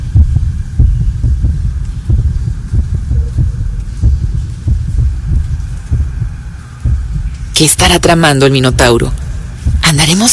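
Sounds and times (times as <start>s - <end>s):
dull droning hum: 0.0s - 10.3s
heartbeat sound effect in low double beats: 0.0s - 10.3s
speech: 7.6s - 9.2s, 9.9s - 10.3s.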